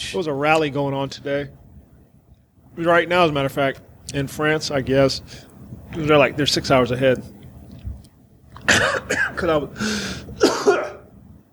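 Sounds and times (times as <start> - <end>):
speech: 0.1 - 1.6, 2.8 - 7.4, 8.7 - 10.6
person clearing throat: 8.6 - 9.5, 10.4 - 11.1
person coughing roughly: 8.6 - 11.1.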